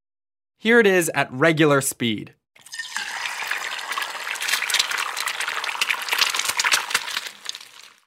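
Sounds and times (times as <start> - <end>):
speech: 0.6 - 2.4
egg frying in a hot pan: 2.6 - 8.0.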